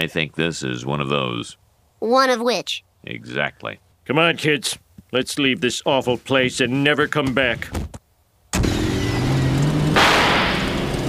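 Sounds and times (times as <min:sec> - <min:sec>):
speech: 0:00.0 - 0:07.9
rusted car engine roaring as it drives off: 0:08.5 - 0:11.0.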